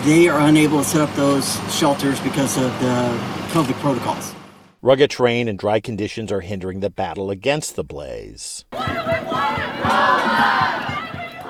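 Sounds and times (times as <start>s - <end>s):
speech: 0.0s - 10.8s
large protest crowd chanting in unison: 8.7s - 11.4s
low rhythmic thumps: 8.7s - 11.4s.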